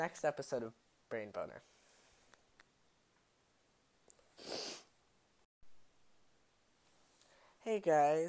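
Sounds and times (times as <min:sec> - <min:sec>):
speech: 0:00.0 - 0:01.8, 0:07.6 - 0:08.2
sniffle from a person with a cold: 0:04.4 - 0:04.9.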